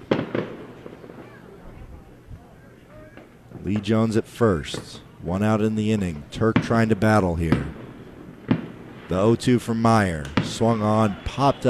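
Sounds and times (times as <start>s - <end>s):
fireworks bangs with rumbling echoes: 0.0s - 2.2s, 2.9s - 11.6s
crowd murmur: 0.0s - 5.2s, 9.6s - 11.6s
speech: 3.6s - 7.8s, 9.1s - 11.6s.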